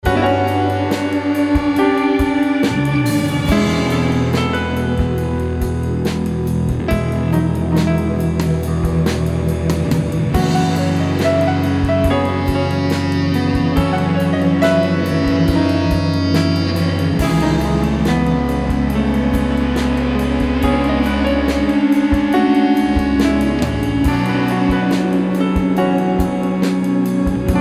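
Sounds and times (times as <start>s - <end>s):
soul overdrive feedback: 0.0s - 27.5s.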